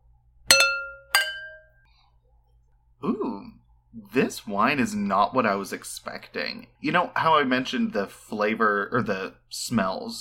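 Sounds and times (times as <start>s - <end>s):
wine glasses clinking together in a toast: 0.5s - 1.8s
speech: 3.0s - 10.1s.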